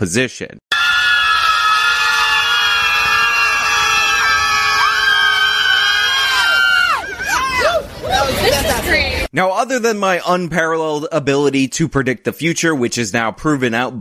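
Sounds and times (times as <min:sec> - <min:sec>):
speech: 0:00.0 - 0:00.6, 0:08.2 - 0:13.9
crowd of protesters screaming: 0:00.7 - 0:08.7.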